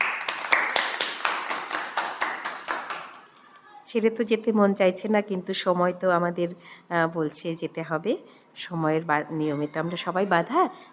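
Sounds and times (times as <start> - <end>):
audience clapping at a music event: 0.0 - 3.3
speech: 3.9 - 10.9.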